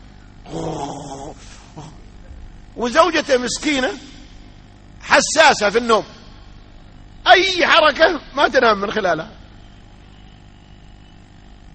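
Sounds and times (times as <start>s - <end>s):
man snorting: 0.4s - 2.2s
man imitating snoring with a rough rattling growl: 0.5s - 2.0s
speech: 2.8s - 4.1s, 5.2s - 6.2s, 7.4s - 9.4s.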